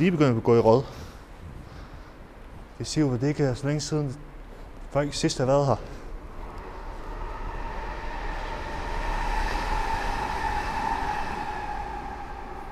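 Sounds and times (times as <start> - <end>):
speech: 0.0 - 1.0, 2.8 - 4.3, 4.9 - 6.0
train rumbling past with a metallic whine: 5.2 - 12.6.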